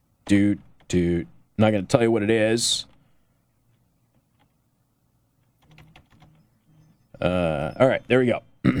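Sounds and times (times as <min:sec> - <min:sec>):
speech: 0:00.3 - 0:02.9, 0:07.2 - 0:08.7
soft typing on a computer keyboard: 0:05.5 - 0:06.4.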